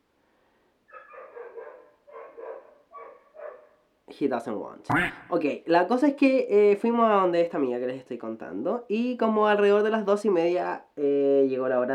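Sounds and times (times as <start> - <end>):
dog barking in drawn-out yelping bursts: 0.9 - 3.9
speech: 4.1 - 11.9.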